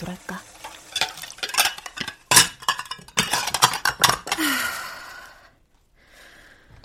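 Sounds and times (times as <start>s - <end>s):
dishes being washed: 0.0s - 4.7s
plates and cutlery clinking: 0.6s - 4.6s.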